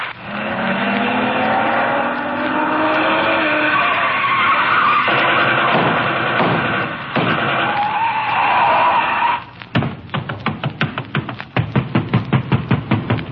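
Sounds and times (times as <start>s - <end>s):
long screeching rush of noise: 0.1s - 9.6s
pounding on a house door: 5.7s - 7.6s, 9.8s - 13.3s.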